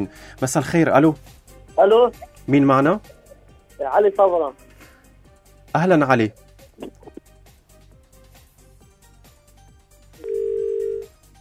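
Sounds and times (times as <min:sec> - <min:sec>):
speech: 0:00.0 - 0:03.2, 0:03.8 - 0:04.6, 0:05.7 - 0:07.0
rhythmic music: 0:00.0 - 0:11.3
loud steady telephone tone after a call drops: 0:10.2 - 0:11.2.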